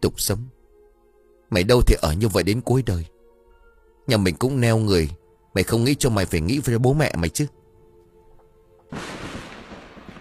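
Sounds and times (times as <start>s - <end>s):
speech: 0.0s - 0.6s, 1.5s - 3.1s, 4.1s - 7.6s, 8.9s - 9.2s
broad rumbling thunder: 8.9s - 10.1s
loud boom from a lightning strike: 9.0s - 10.1s.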